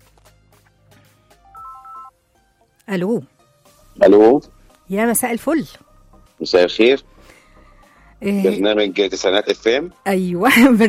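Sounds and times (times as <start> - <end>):
telephone ringing with a short electronic ringtone: 1.5 - 2.1
speech: 2.9 - 3.3, 4.0 - 7.1, 8.2 - 10.8.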